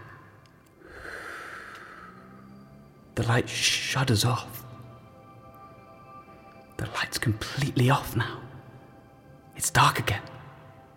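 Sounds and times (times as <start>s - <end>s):
slow deep breathing in and out: 0.0s - 3.0s
speech: 3.2s - 4.6s, 6.8s - 8.4s, 9.6s - 10.3s.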